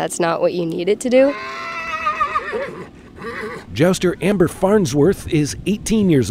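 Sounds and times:
speech: 0.0 - 1.8, 2.5 - 6.2
horse whinnying with a shrill quavering neigh: 1.2 - 4.3.

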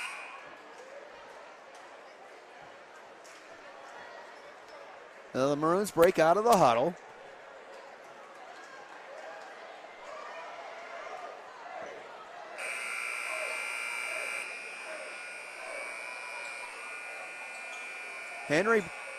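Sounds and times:
crowd noise at a high school boys basketball game: 0.0 - 19.1
speech: 5.4 - 7.0, 18.5 - 19.0
scoreboard buzzer at a high school boys basketball game: 12.6 - 19.1.

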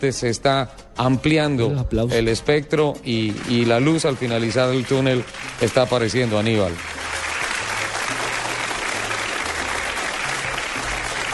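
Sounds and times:
speech: 0.0 - 7.0
crowd applause: 3.3 - 11.3.

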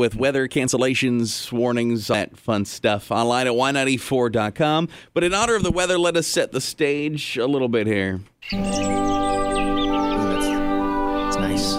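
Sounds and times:
speech: 0.0 - 9.0
birds chirping: 8.4 - 11.7.

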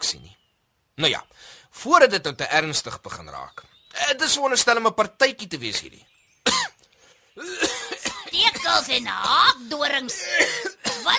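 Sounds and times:
speech: 1.0 - 6.1, 7.4 - 11.1
person coughing: 6.4 - 6.8, 7.4 - 9.0, 10.1 - 11.1.

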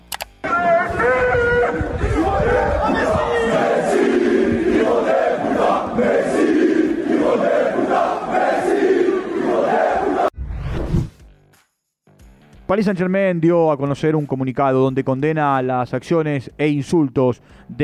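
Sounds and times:
large crowd of protesting football fans chanting and shouting at club headquarters gates: 0.4 - 10.4
speech: 12.7 - 17.8.

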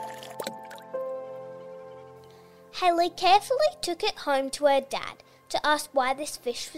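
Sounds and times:
water pouring into a plastic cup: 0.0 - 0.9
speech: 2.8 - 6.7.

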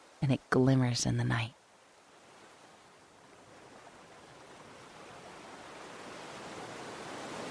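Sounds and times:
speech: 0.2 - 1.6
gentle ocean waves on shoreline: 1.6 - 7.4.

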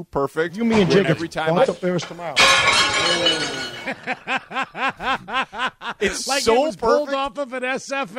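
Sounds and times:
speech: 0.0 - 8.1
glasses crashing in a restaurant tray: 2.0 - 4.3
laughter: 3.1 - 6.3.

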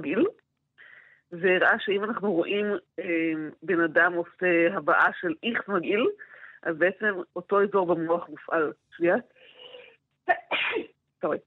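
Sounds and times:
speech: 0.0 - 0.4, 1.3 - 9.4, 10.3 - 11.4
person sneezing: 10.5 - 10.9.

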